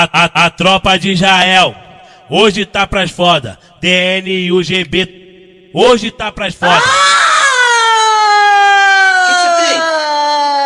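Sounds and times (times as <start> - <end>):
speech: 0.0 - 7.2
ambulance siren wailing: 6.6 - 10.6.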